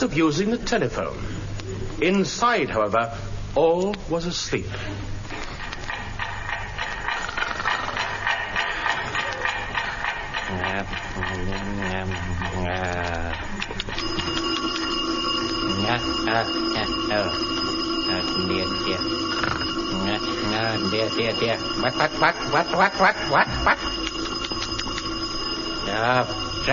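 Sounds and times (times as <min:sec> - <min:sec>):
speech: 0:00.0 - 0:01.4, 0:02.0 - 0:05.2, 0:10.8 - 0:14.7, 0:15.7 - 0:24.0, 0:25.9 - 0:26.7
loud alarm clock ringing shrilly: 0:05.6 - 0:26.7.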